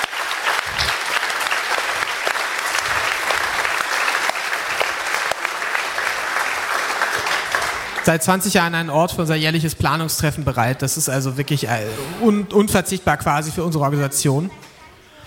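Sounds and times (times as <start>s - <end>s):
audience applause: 0.0s - 8.2s
speech: 8.0s - 14.7s.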